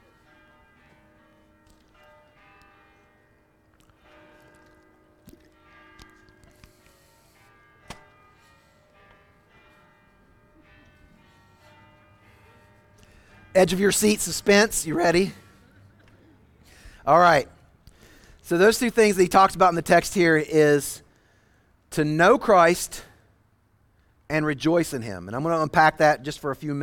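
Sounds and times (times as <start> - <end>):
sharper bell clangs: 0.0 - 15.4
church bells pealing: 0.0 - 21.0
faint noise: 0.0 - 26.8
speech: 13.6 - 15.4, 17.1 - 17.6, 18.5 - 21.0, 21.9 - 23.1, 24.3 - 26.8.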